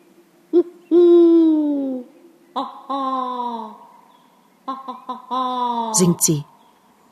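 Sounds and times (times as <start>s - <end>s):
human voice imitating owl hoots: 0.5s - 3.9s, 4.7s - 6.4s
speech: 2.6s - 3.0s, 6.0s - 6.5s.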